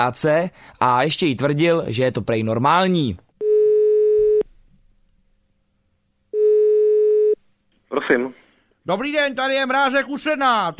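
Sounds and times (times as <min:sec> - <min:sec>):
speech: 0:00.0 - 0:03.2, 0:08.0 - 0:10.7
telephone ringing tone through the earpiece: 0:03.4 - 0:04.4, 0:06.4 - 0:07.4.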